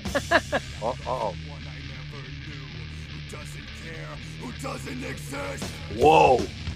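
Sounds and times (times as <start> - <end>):
laughter: 0.0 - 1.4
speech: 0.2 - 1.6, 4.2 - 6.6
man yelling loudly: 0.8 - 1.4, 5.8 - 6.5.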